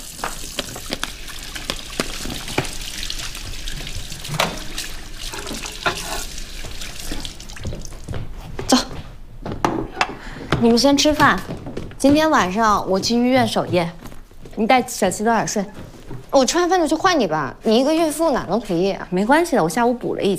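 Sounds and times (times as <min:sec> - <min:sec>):
hands washed under a running tap at home: 0:00.0 - 0:08.2
speech: 0:10.7 - 0:14.0, 0:14.6 - 0:15.8, 0:16.4 - 0:20.3.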